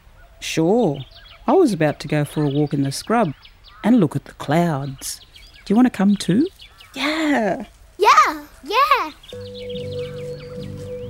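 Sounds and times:
birds chirping and calling outdoors in the scrub: 0:00.0 - 0:11.0
speech: 0:00.4 - 0:07.7, 0:08.6 - 0:10.2.

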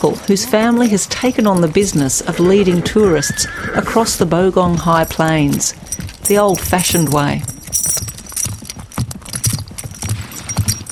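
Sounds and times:
faint jingle of horse tack: 0:00.0 - 0:02.3, 0:04.6 - 0:10.9
speech: 0:00.0 - 0:07.5
hooves of a group of horses and pack horses clip-clopping on the Bogong High Plains: 0:00.0 - 0:10.9.

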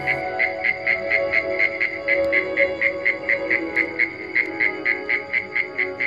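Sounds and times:
constant low droning background: 0:00.0 - 0:01.1
cricket-like insect chirping: 0:00.0 - 0:06.0.

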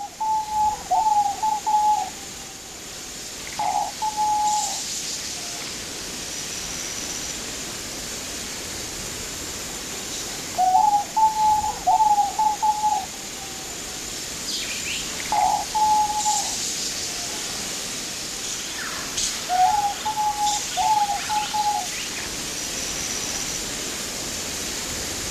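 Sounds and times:
diamond dove cooing in short pulsed phrases: 0:00.0 - 0:02.6, 0:03.5 - 0:04.8, 0:10.6 - 0:13.7, 0:15.2 - 0:17.4, 0:19.5 - 0:22.0
steady hiss of noise: 0:00.0 - 0:25.2.

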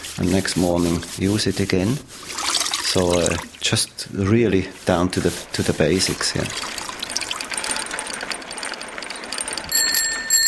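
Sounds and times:
steady rushing hiss-like noise: 0:00.0 - 0:07.9
speech: 0:00.2 - 0:06.8
bicycle bell ringing: 0:08.5 - 0:10.4.

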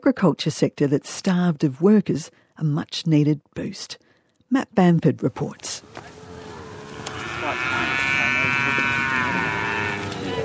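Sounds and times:
speech: 0:00.0 - 0:06.1
faint lowing from other cattle on a cattle station: 0:06.2 - 0:10.4
cow mooing on a cattle station in Western Australia: 0:06.3 - 0:10.4.

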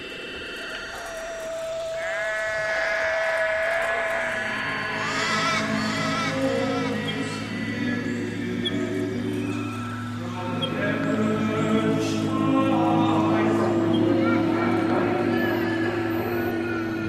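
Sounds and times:
faint insect buzz: 0:00.0 - 0:17.0
steady low outdoor hum: 0:00.0 - 0:17.0
sheep bleating in an open paddock: 0:00.8 - 0:09.8.

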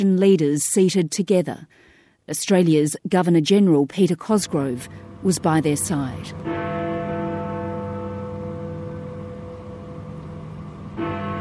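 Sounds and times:
speech: 0:00.0 - 0:06.8
church bells ringing: 0:04.4 - 0:11.4.

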